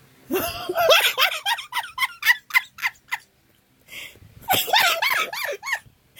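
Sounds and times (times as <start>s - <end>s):
person laughing: 0.3s - 3.3s, 4.5s - 5.9s.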